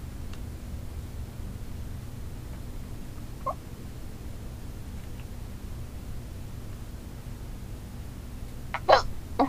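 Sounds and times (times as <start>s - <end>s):
low steady hum: 0.0s - 9.4s
person hiccuping while holding breath: 8.8s - 9.4s.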